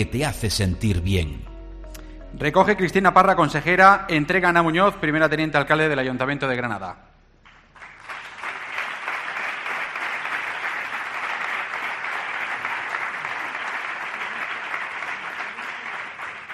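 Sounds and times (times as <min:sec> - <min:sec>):
speech: 0:00.0 - 0:01.5, 0:02.3 - 0:07.1
large audience applauding at an award presentation: 0:07.7 - 0:16.5.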